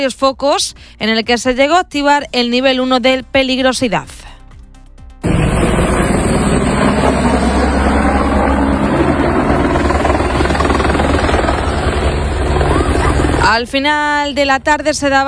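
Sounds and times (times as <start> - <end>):
speech: 0.0 - 4.2, 13.5 - 15.2
firefighting helicopter rotor roar flying overhead: 5.2 - 15.2.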